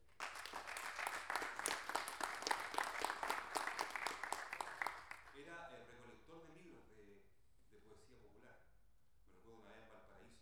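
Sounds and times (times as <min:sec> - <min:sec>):
audience applause at a panel discussion on Chilean improvised folk poetry: 0:00.0 - 0:05.3.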